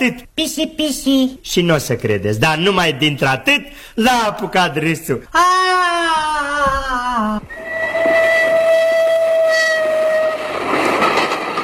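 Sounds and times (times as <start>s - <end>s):
speech: 0.0s - 7.6s
steam-style train whistle: 7.5s - 10.7s
rumble and clatter of train cars pulling in: 9.3s - 11.6s.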